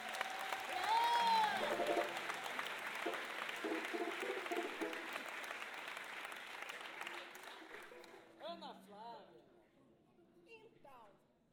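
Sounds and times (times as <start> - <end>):
voices and whoops in an audience: 0.0 - 1.8
audience clapping: 0.0 - 8.4.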